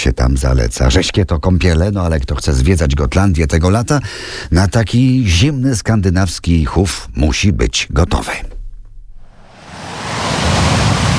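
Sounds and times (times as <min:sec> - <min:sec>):
speech: 0:00.0 - 0:08.6
sea waves breaking on shore: 0:09.2 - 0:11.1.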